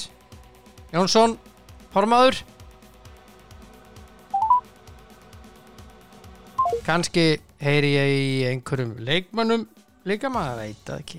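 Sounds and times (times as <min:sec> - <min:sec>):
speech: 0:00.9 - 0:02.5, 0:06.9 - 0:11.1
telephone keypad tones of a number being dialed: 0:04.4 - 0:04.6, 0:06.6 - 0:06.8.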